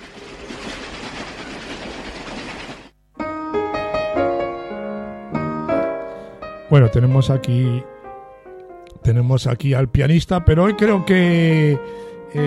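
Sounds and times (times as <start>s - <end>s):
train rolling rumble sound effect: 0.0s - 2.9s
bright melodic music: 3.2s - 12.4s
speech: 6.7s - 8.0s, 9.0s - 12.4s.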